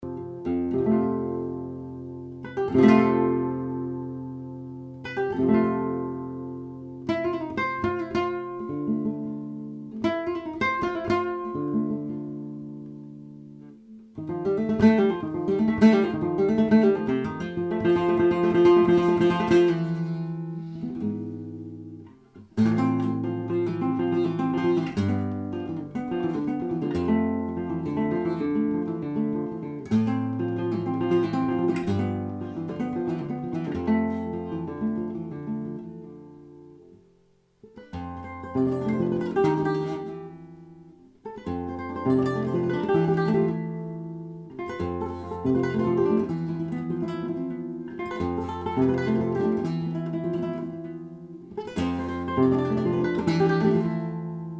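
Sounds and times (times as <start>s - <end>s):
rondeña flamenco guitar music: 0.0s - 54.5s.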